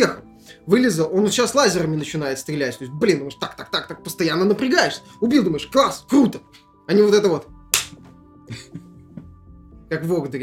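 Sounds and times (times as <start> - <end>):
speech: 0.0 - 7.5, 8.5 - 8.8, 9.9 - 10.4
hand slap: 7.7 - 8.1.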